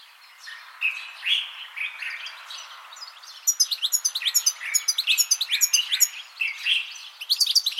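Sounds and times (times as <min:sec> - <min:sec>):
European goldfinch twittering: 0:03.0 - 0:07.7.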